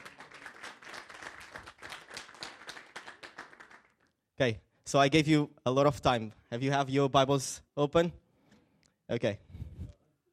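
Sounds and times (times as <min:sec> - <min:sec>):
audience clapping: 0:00.0 - 0:04.2
speech: 0:04.4 - 0:08.2, 0:09.1 - 0:09.4.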